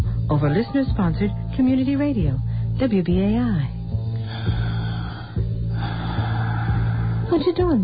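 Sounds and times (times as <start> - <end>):
low steady hum: 0.0 - 7.8
speech: 0.3 - 4.6, 7.3 - 7.8
loud heavy breathing: 4.1 - 7.6.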